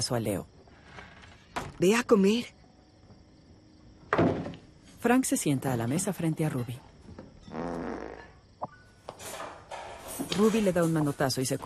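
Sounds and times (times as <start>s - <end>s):
speech: 0.0s - 0.6s, 1.8s - 2.6s, 5.0s - 6.9s, 10.3s - 11.6s
buzzy fart: 7.5s - 8.4s.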